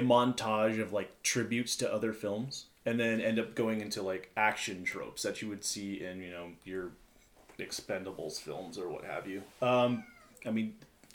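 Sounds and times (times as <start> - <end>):
speech: 0.0 - 7.0, 7.6 - 10.9
cat meowing for attention: 9.8 - 10.4.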